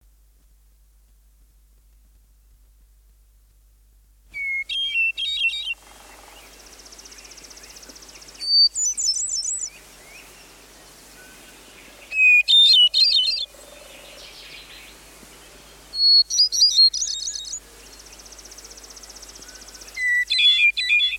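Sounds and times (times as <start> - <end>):
hermit thrush singing: 4.3 - 21.1.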